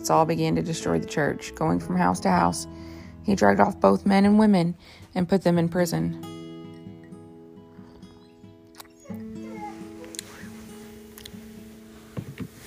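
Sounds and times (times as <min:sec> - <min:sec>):
speech: 0:00.0 - 0:06.3
dogs whining and whimpering: 0:07.7 - 0:11.1.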